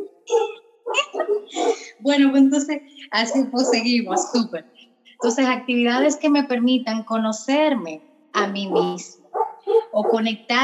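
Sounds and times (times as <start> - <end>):
dog barking: 0.3 - 1.8, 3.2 - 4.5, 8.6 - 10.3
speech: 1.5 - 9.2, 10.0 - 10.6.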